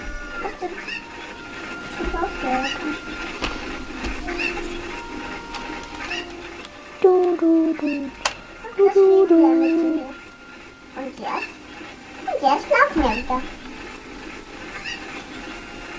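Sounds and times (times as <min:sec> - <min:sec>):
dog whimpering: 0:00.0 - 0:15.9
soft hum: 0:00.0 - 0:15.9
speech: 0:00.4 - 0:03.4, 0:07.4 - 0:08.2, 0:08.8 - 0:10.1, 0:11.0 - 0:11.5, 0:12.4 - 0:13.6
person repeating a short syllable: 0:07.0 - 0:08.1.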